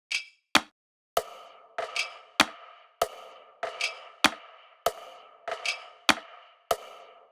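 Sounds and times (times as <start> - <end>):
pop percussion loop at 130 BPM: 0.6 - 7.3.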